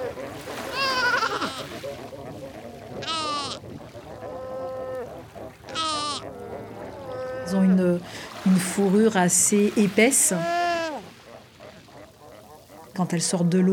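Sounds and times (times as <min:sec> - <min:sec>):
fur seal mother calling for her pup in Namibia: 0:00.0 - 0:13.6
other fur seal pups crying: 0:00.7 - 0:01.6, 0:03.0 - 0:03.6, 0:05.7 - 0:06.3, 0:10.3 - 0:11.1
fur seal pup answering with goat-like bleats: 0:00.7 - 0:01.8, 0:03.0 - 0:07.7, 0:10.3 - 0:12.9
speech: 0:08.8 - 0:10.6, 0:13.0 - 0:13.7.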